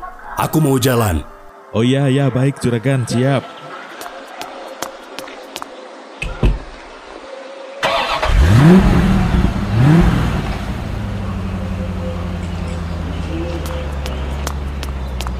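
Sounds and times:
speech: 0:00.4 - 0:03.6, 0:08.6 - 0:09.0
car engine cranking, revving and idling: 0:07.8 - 0:15.3.

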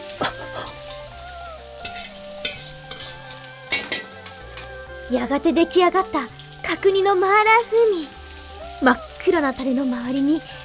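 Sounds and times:
melodic tune playing: 0:00.0 - 0:10.4
food sizzling as cooks stir-fry in large woks: 0:00.0 - 0:10.6
metal spatulas scraping and clanking in large woks: 0:00.2 - 0:04.8
speech: 0:05.1 - 0:08.2, 0:08.8 - 0:10.6.

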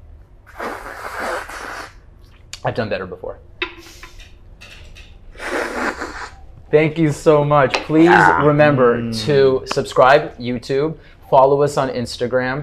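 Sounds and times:
loud slurp of a drink: 0:00.5 - 0:02.0
speech: 0:02.6 - 0:03.4, 0:06.7 - 0:12.6.

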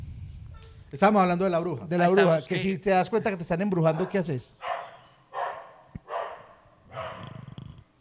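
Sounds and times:
speech: 0:00.9 - 0:04.7
dog barking: 0:03.9 - 0:07.5.

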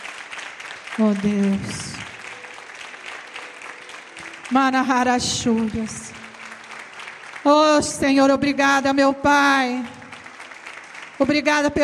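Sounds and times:
congregation applauding: 0:00.0 - 0:11.8
speech: 0:01.0 - 0:02.0, 0:04.5 - 0:06.2, 0:07.4 - 0:10.0, 0:11.2 - 0:11.8.

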